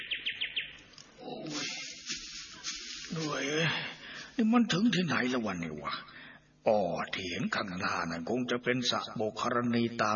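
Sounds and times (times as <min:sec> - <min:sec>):
birds calling at sunset as they fly home to roost: 0:00.0 - 0:03.4
speech: 0:03.2 - 0:10.1.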